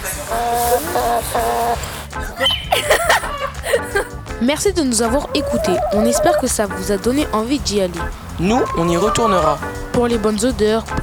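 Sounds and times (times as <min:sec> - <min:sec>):
hens clucking: 0:00.0 - 0:11.0
laughter: 0:00.0 - 0:11.0
speech: 0:00.3 - 0:11.0.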